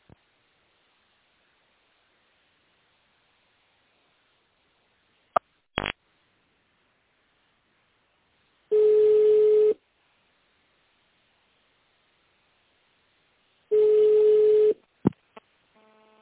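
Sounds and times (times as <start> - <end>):
telephone line beeps while a call is being transferred: 8.7 - 9.8, 13.7 - 14.8.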